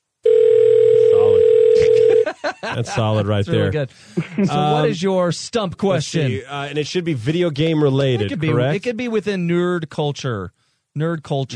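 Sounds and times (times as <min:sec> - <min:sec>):
telephone dial tone: 0:00.2 - 0:02.2
laughter: 0:01.8 - 0:05.0, 0:08.0 - 0:08.8
speech: 0:02.4 - 0:11.5.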